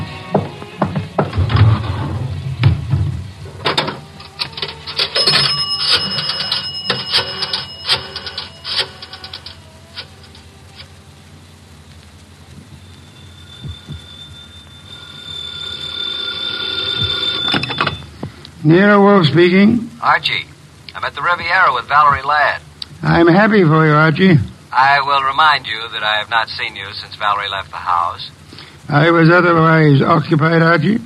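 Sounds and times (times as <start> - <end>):
rattling clattering noise: 0.3 - 11.0, 12.5 - 18.4
telephone ringing in a public phone booth: 4.4 - 10.1, 12.8 - 18.2
speech: 18.7 - 31.0.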